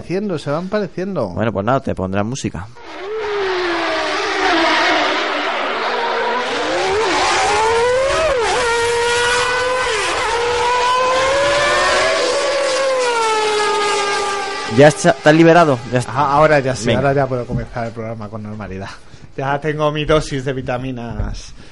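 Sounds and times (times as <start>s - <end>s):
speech: 0.0s - 3.2s, 14.8s - 21.7s
Formula 1 race car engine revving: 2.8s - 18.5s.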